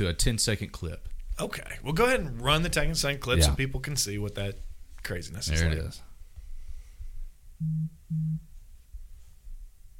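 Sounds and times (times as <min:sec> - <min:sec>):
speech: 0:00.0 - 0:06.1, 0:07.6 - 0:08.5
mobile phone vibrating: 0:07.6 - 0:08.5.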